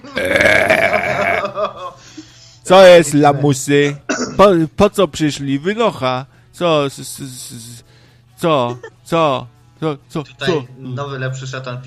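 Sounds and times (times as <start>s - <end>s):
speech: 0.1s - 0.6s, 2.7s - 11.8s
long loud voiced burp into a microphone: 0.2s - 1.5s.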